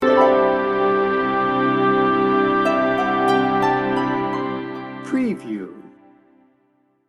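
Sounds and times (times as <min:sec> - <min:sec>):
dreamy piano sting bumper: 0:00.0 - 0:05.3.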